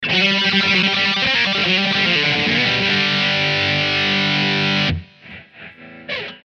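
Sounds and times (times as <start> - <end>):
speed rock outro in G: 0.0 - 6.4.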